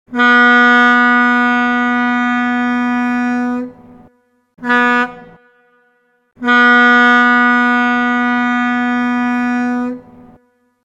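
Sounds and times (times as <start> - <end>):
long short long tones: 0.1 - 10.8.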